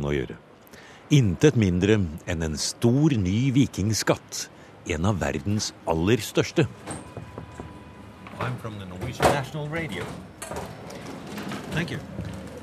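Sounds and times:
speech: 0:00.0 - 0:00.4, 0:01.1 - 0:07.0, 0:08.4 - 0:10.8, 0:11.8 - 0:12.4
knocking: 0:06.7 - 0:12.3.

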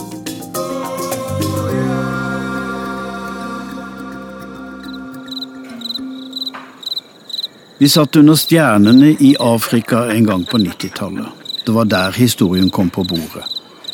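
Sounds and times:
sustained musical passage: 0:00.0 - 0:06.8
crickets chirping on a mild night in Africa: 0:00.9 - 0:13.9
speech: 0:07.8 - 0:13.6.

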